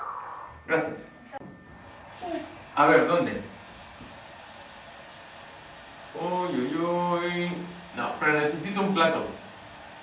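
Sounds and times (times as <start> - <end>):
washing machine running at home: 0.6 - 10.0
speech: 0.7 - 1.2, 2.8 - 3.5.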